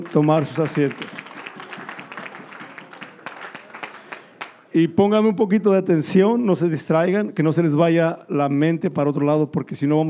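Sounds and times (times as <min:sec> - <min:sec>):
speech: 0:00.0 - 0:01.1, 0:04.7 - 0:10.0
crowd of people clapping together in a room: 0:00.0 - 0:04.8.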